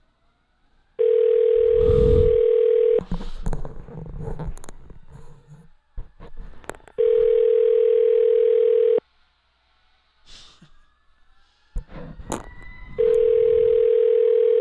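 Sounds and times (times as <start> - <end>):
ringback tone of an unanswered telephone call: 1.0 - 3.1, 7.0 - 9.0, 13.0 - 14.6.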